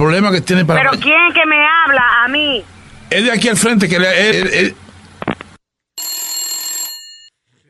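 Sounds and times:
speech: 0.0 - 4.8
telephone bell ringing: 6.0 - 7.3.

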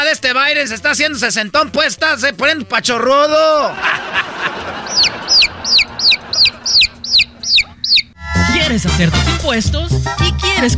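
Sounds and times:
speech: 0.1 - 4.8, 8.8 - 10.7
laughter: 3.6 - 7.5
chicken clucking in a commercial for an income tax service: 4.7 - 8.2.

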